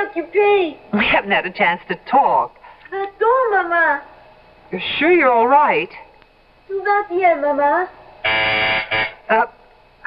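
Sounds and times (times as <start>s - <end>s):
speech: 0.0s - 4.1s, 4.7s - 6.1s, 6.7s - 9.6s
apartment phone buzzer from downstairs: 8.2s - 9.5s.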